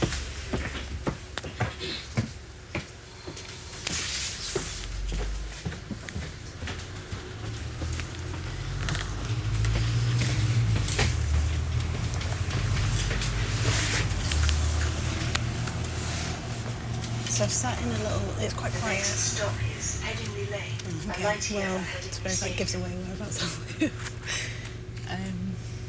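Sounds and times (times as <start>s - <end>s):
footsteps inside a bus: 0.0s - 22.4s
steady low bus engine rumble: 0.0s - 25.8s
bus doors clunking: 5.2s - 24.2s
speech: 17.5s - 24.4s.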